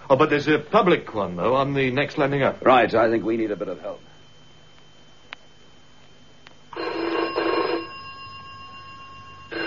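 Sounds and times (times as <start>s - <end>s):
speech: 0.1s - 4.1s
telephone bell ringing: 6.7s - 9.6s.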